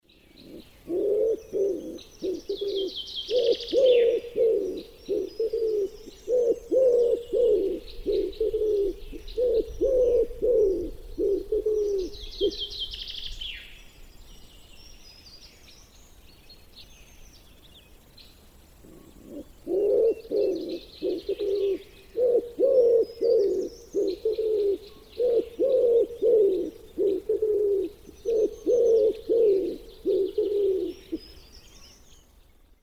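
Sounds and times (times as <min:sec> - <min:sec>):
wood pigeon: 0:00.4 - 0:12.8, 0:18.8 - 0:31.2.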